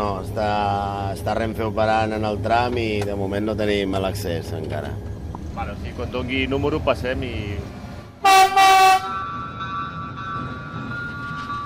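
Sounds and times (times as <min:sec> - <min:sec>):
speech: 0:00.0 - 0:08.6
low rumbling freight train engine and track noise: 0:00.0 - 0:11.6
freight train horn blasts: 0:08.2 - 0:09.2.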